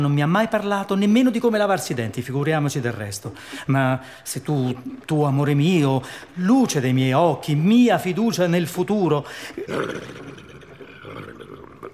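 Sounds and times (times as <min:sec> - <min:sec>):
speech: 0:00.0 - 0:11.4
loud breathy snorting huff with rough rumbling exhale: 0:09.4 - 0:11.9.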